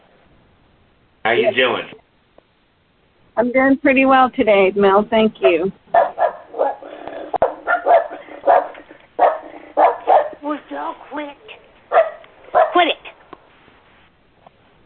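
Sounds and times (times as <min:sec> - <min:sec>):
speech: 0:01.2 - 0:02.0, 0:03.4 - 0:05.8
dog barking and yipping through a thin phone-like line: 0:05.4 - 0:10.4, 0:11.9 - 0:12.9.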